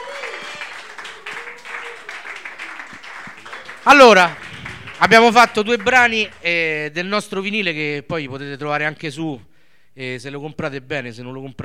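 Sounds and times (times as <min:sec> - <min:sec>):
crowd applauding at a live music show: 0:00.0 - 0:06.7
speech: 0:03.8 - 0:04.4, 0:05.0 - 0:11.6.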